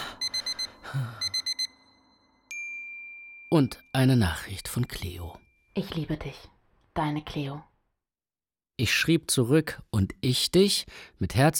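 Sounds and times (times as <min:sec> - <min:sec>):
alarm clock ringing with bright electronic beeps: 0:00.0 - 0:02.6
speech: 0:00.9 - 0:01.2, 0:03.5 - 0:07.7, 0:08.8 - 0:11.5.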